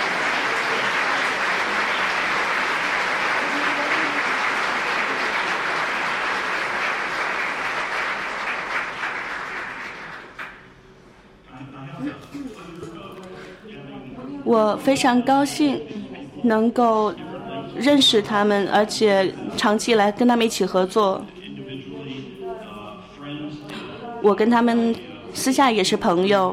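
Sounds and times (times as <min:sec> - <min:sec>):
large crowd applauding: 0:00.0 - 0:10.7
speech: 0:14.5 - 0:17.2, 0:17.8 - 0:21.4, 0:24.2 - 0:26.5.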